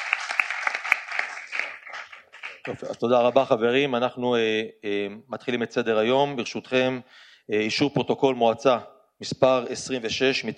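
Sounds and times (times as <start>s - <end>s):
light audience applause at a municipal council meeting: 0.0s - 2.9s
speech: 2.6s - 10.5s.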